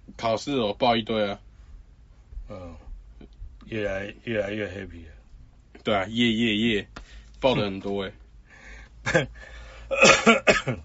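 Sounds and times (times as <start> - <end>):
speech: 0.2 - 1.4, 3.7 - 5.2, 5.8 - 8.2, 9.0 - 10.8
person coughing: 9.1 - 9.3, 9.9 - 10.8.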